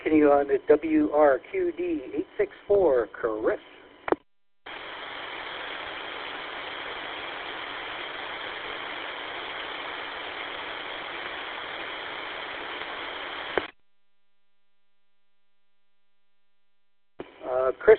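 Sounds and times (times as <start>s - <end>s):
thin hissy radio static: 0.0s - 13.8s
speech: 0.1s - 3.8s.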